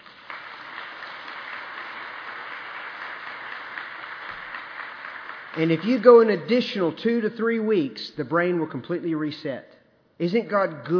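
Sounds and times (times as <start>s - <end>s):
audience at a sermon applauding: 0.0s - 6.4s
speech: 5.6s - 10.9s.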